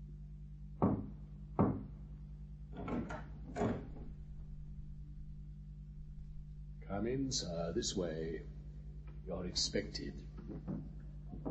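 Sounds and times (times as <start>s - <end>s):
low steady hum: 0.0s - 11.4s
speech: 7.0s - 8.6s, 9.3s - 11.4s
heavy footsteps: 10.3s - 11.4s.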